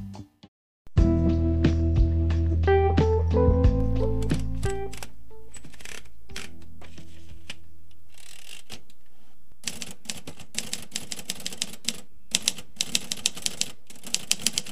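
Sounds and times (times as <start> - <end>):
tonal hum: 1.1 - 8.0
quieter mechanical shuffling: 3.8 - 14.6
1950s-era manual typewriter typing: 4.2 - 6.6, 9.6 - 14.6.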